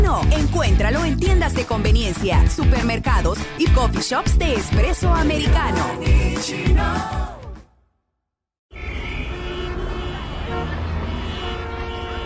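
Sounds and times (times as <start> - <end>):
speech: 0.7 - 7.4
car horns blaring: 8.7 - 12.2
dense rumble of passing road traffic: 8.7 - 12.2.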